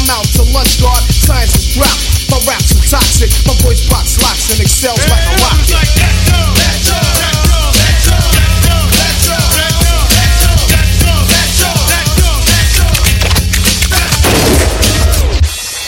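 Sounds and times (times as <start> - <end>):
loud dense music: 0.0 - 15.8
gunshot bangs: 14.2 - 15.2.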